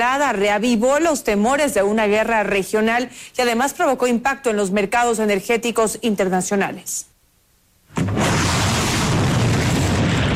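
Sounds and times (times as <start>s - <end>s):
speech: 0.1s - 7.1s, 7.9s - 8.5s
explosion boom: 7.9s - 10.3s.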